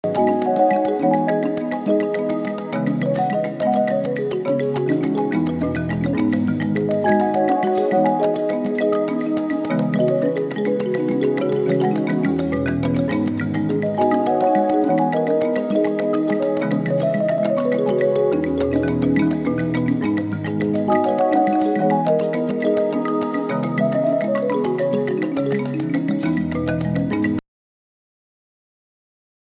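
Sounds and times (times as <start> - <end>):
African marimba playing: 0.0 - 27.4.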